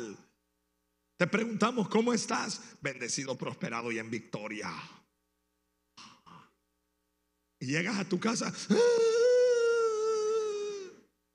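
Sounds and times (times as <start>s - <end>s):
speech: 1.2s - 5.0s, 7.6s - 9.2s
person imitating crying and sobbing: 8.5s - 11.0s.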